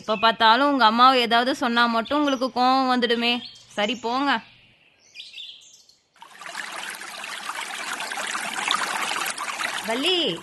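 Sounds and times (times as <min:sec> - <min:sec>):
speech: 0:00.0 - 0:04.5, 0:09.8 - 0:10.4
bird chirps: 0:01.9 - 0:06.2
deep stream water rushing: 0:06.2 - 0:10.4.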